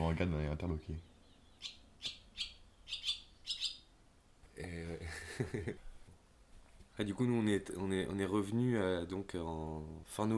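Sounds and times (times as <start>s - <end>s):
speech: 0.1s - 2.2s, 4.6s - 5.9s, 7.0s - 10.3s
swallow chirping on an electric wire above the house: 1.0s - 3.9s.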